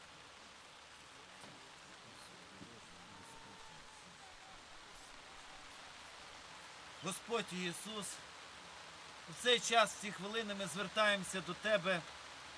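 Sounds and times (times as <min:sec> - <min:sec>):
steady rain falling outdoors: 0:00.0 - 0:12.5
faint indistinct murmuring: 0:01.6 - 0:08.0
speech: 0:07.0 - 0:08.3, 0:09.3 - 0:12.2.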